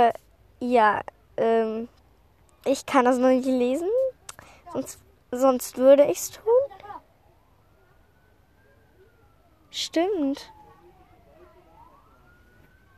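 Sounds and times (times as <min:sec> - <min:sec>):
speech: 0:00.0 - 0:02.0, 0:02.6 - 0:04.0, 0:04.7 - 0:06.5, 0:09.7 - 0:10.6
emergency vehicle siren wailing: 0:06.2 - 0:12.9.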